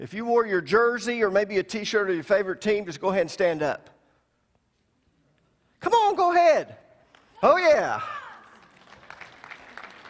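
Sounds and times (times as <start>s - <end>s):
speech: 0.0s - 4.0s, 5.8s - 6.8s, 7.4s - 8.2s
audience of football fans clapping: 8.5s - 10.0s.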